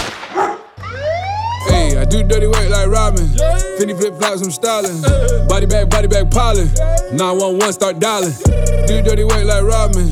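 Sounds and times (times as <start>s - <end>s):
dog barking: 0.3s - 0.8s
police siren wailing: 0.8s - 10.1s
steady low hum: 1.0s - 3.7s, 5.1s - 7.1s, 8.5s - 10.1s
speech: 1.9s - 10.1s.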